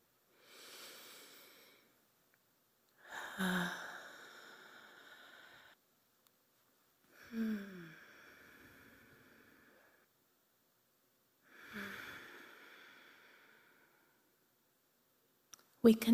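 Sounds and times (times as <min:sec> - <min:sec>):
slow intentional breathing during prayer: 0:00.3 - 0:02.0, 0:03.0 - 0:05.8, 0:07.1 - 0:10.1, 0:11.4 - 0:14.4
speech: 0:03.4 - 0:03.8, 0:15.8 - 0:16.1.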